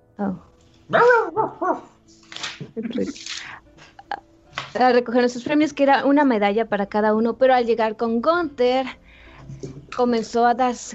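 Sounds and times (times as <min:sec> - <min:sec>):
speech: 0:00.2 - 0:02.2, 0:02.8 - 0:03.6, 0:04.7 - 0:09.0, 0:09.6 - 0:10.9
small dog barking with high yappy barks and yips: 0:00.9 - 0:01.9.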